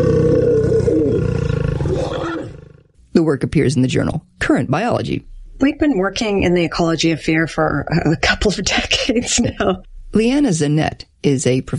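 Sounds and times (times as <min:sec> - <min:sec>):
lion snarling and roaring: 0:00.0 - 0:03.0
speech: 0:03.3 - 0:11.7.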